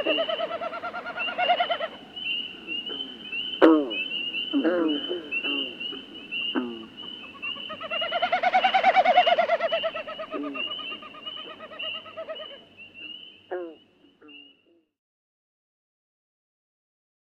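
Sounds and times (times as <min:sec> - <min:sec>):
Common Snipe winnowing in North America: 0:00.0 - 0:14.6.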